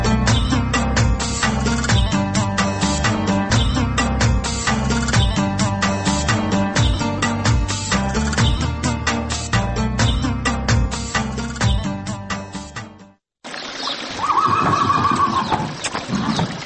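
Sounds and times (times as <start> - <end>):
rhythmic music: 0.0 - 13.0
village racehorse giving a long wavering whinny: 14.2 - 16.3.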